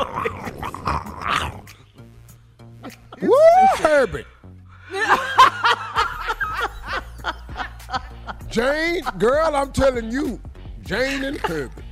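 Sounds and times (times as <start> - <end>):
person imitating the noise of koala bears mating: 0.0 - 1.8
speech: 3.9 - 4.3, 8.6 - 11.8
laughter: 4.8 - 9.8, 11.0 - 11.8.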